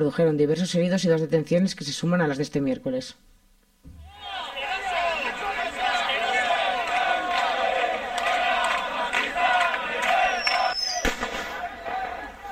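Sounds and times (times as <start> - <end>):
speech: 0.0 - 3.3
rioting crowd shouting during a protest on a university campus: 4.0 - 12.5
sharp bang: 11.0 - 11.6.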